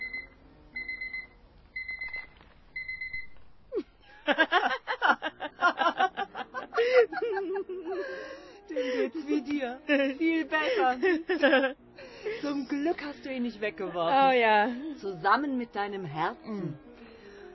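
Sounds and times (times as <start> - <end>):
alarm clock found in a box of rubbish beeping: 0.0 - 3.4
person giggling and chuckling: 3.7 - 10.1
speech: 9.8 - 11.8, 12.5 - 16.8.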